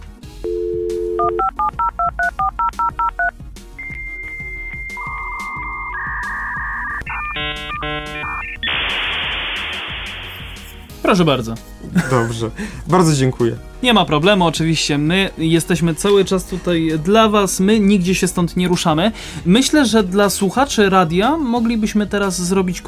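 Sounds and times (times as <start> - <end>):
old dial-up modem touch-tone dialing beeps: 0.5 - 8.8
speech: 1.3 - 1.7, 11.1 - 22.8
loud hiss of static from a dial-up modem: 8.6 - 10.8.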